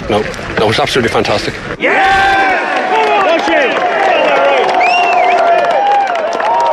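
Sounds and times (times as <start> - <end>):
speech: 0.1 - 2.4
large crowd cheering and shouting for a golfer: 1.8 - 6.7.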